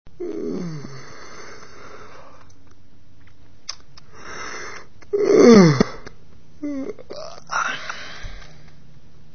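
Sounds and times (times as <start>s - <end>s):
person yawning: 5.1s - 8.2s.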